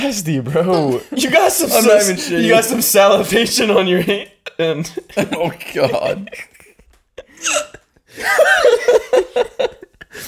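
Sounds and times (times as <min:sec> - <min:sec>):
speech: 0:00.0 - 0:06.6, 0:07.4 - 0:10.2
laughter: 0:00.8 - 0:10.2
person hiccuping with jerky voiced catches: 0:07.4 - 0:07.8.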